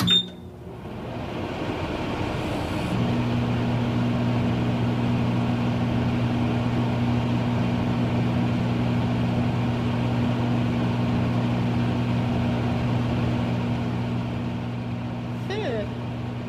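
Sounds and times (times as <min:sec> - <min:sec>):
microwave oven beep: 0:00.0 - 0:00.5
microwave oven heating soup humming: 0:00.0 - 0:16.4.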